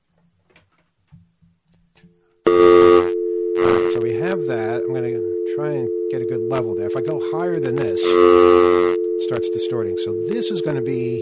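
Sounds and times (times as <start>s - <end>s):
telephone dial tone: 2.5s - 11.2s
speech: 3.6s - 11.2s.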